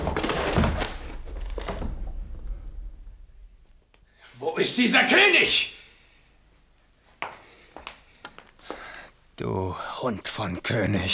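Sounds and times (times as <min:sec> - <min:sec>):
door being broken open in a staged drama crowd scene: 0:00.0 - 0:03.0
thumps and crashes: 0:00.0 - 0:03.4
speech: 0:04.6 - 0:05.7, 0:09.4 - 0:11.1.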